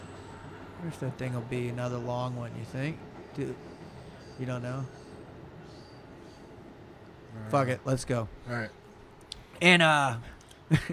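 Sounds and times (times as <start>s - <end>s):
faint high-pitched wheel squeals: 0.0s - 7.5s
train wheels rumbling on rails: 0.0s - 9.2s
speech: 0.8s - 3.7s, 4.4s - 5.0s, 7.4s - 8.8s, 9.6s - 10.9s
laughter: 10.7s - 10.9s.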